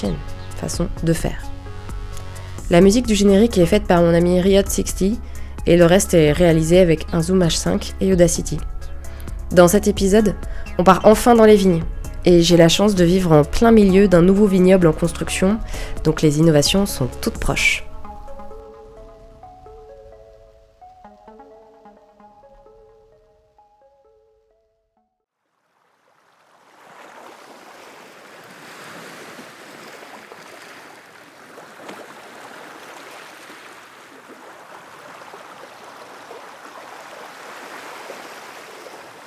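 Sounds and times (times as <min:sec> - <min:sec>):
speech: 0:00.0 - 0:01.5, 0:02.7 - 0:08.7, 0:09.5 - 0:17.9
short melodic music passage: 0:00.0 - 0:25.2
sea waves washing onto the shore at Locmiquélic in Morbihan: 0:25.6 - 0:39.2.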